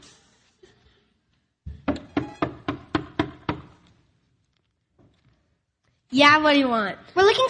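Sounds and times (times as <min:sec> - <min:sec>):
firm knocks on a wooden inn door: 0:01.7 - 0:03.7
speech: 0:06.1 - 0:07.4.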